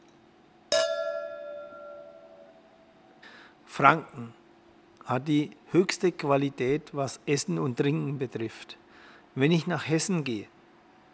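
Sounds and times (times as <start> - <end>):
beer glasses clinking in a toast in Franconia Germany: 0.7 - 2.6
speech: 3.7 - 4.4, 5.1 - 10.6.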